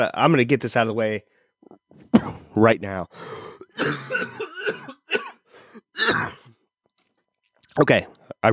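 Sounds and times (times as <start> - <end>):
speech: 0.0 - 5.0, 7.8 - 8.5
harsh throaty coughs: 2.1 - 2.6, 3.6 - 6.6.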